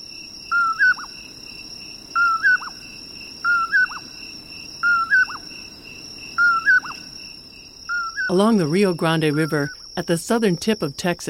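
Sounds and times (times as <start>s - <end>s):
Common Poorwill whistled calls echoing across a canyon: 0.5s - 1.1s, 2.2s - 2.8s, 3.4s - 4.0s, 4.8s - 5.4s, 6.4s - 7.0s, 7.9s - 8.3s
speech: 8.3s - 11.2s.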